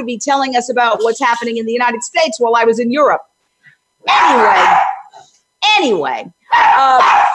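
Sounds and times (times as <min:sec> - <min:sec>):
speech: 0:00.0 - 0:03.3, 0:04.0 - 0:04.9, 0:05.8 - 0:07.3
dog barking excitedly at a visitor: 0:04.0 - 0:05.2, 0:06.5 - 0:07.3.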